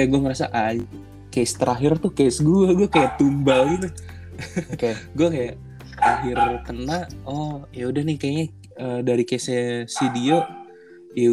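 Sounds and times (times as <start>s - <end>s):
speech: 0.0s - 11.3s
pet dog barking in yips and woofs: 2.9s - 3.9s, 5.9s - 6.9s, 10.0s - 10.8s
laughter: 4.3s - 5.1s.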